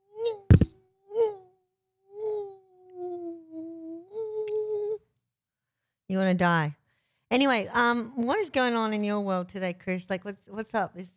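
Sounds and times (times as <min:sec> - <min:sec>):
voice imitating a mosquito's whine: 0:00.0 - 0:05.0
speech: 0:06.2 - 0:11.1.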